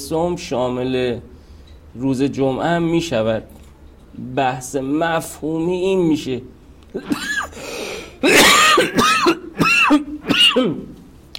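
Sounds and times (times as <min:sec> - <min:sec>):
speech: 0:00.1 - 0:01.3, 0:02.0 - 0:07.4, 0:08.2 - 0:10.9
man clearing his throat: 0:07.0 - 0:07.6, 0:08.2 - 0:11.0
man coughing: 0:07.0 - 0:11.0.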